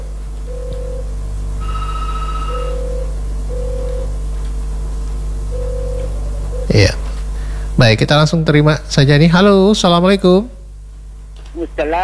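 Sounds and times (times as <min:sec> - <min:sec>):
telephone ringing with an incoming call: 0:00.0 - 0:04.4, 0:05.4 - 0:07.1
constant low hum: 0:00.0 - 0:12.0
speech: 0:06.7 - 0:07.1, 0:07.8 - 0:10.6, 0:11.6 - 0:12.0.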